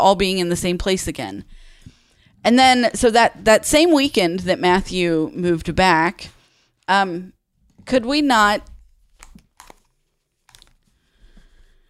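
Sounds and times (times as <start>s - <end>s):
speech: 0.0s - 1.7s, 2.4s - 8.7s
wrapping paper rustling and crinkling: 8.8s - 11.0s.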